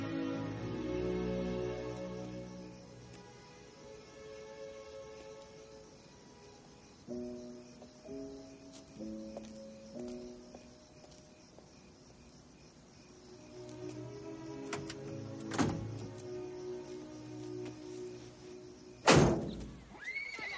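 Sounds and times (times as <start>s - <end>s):
quiet outdoor ambience on a farm: 0.0s - 20.5s
horse whinnying on a farm: 19.9s - 20.5s.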